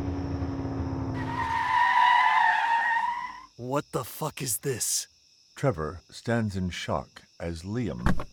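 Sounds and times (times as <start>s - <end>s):
car tires screeching in a long loud skid: 0.0s - 3.6s
speech: 3.7s - 8.3s.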